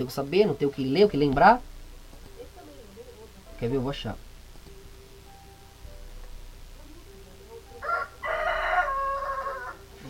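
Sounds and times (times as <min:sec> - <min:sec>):
speech: 0:00.0 - 0:01.7, 0:03.6 - 0:04.3
faint noise: 0:00.0 - 0:10.0
rooster crowing: 0:07.8 - 0:09.9.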